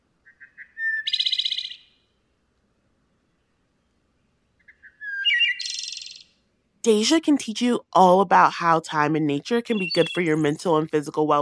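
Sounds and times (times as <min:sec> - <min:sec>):
wood thrush singing flute-like phrases: 0:00.2 - 0:02.1, 0:03.3 - 0:06.4, 0:09.6 - 0:11.2
speech: 0:06.8 - 0:11.3.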